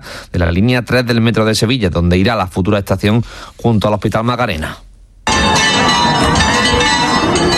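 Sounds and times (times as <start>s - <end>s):
speech: 0.4s - 4.9s
church bells pealing in the village of El Rocío on Pentecost Monday: 5.3s - 7.5s.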